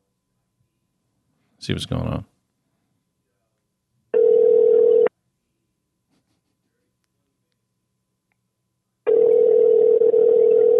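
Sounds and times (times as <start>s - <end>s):
speech: 1.6s - 2.4s
telephone line tone while placing a call: 4.2s - 5.1s, 9.1s - 10.7s.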